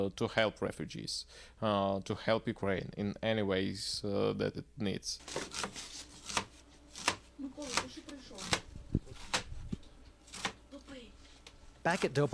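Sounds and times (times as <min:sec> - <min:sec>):
speech: 0:00.0 - 0:05.9, 0:11.8 - 0:12.3
knife chopping herbs on a cutting board for vareniki: 0:05.2 - 0:09.5, 0:10.3 - 0:10.6.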